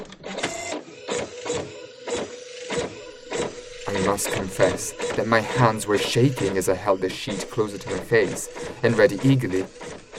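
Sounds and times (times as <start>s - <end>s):
printer printing a scanned copy of a letter: 0.0s - 10.1s
speech: 3.9s - 9.8s.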